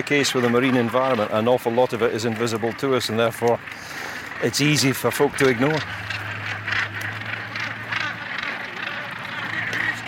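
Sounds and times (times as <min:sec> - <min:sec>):
speech: 0:00.0 - 0:06.2
hundreds of waterfowl quacking and honking on a path: 0:00.0 - 0:10.0
low steady hum: 0:04.6 - 0:10.0.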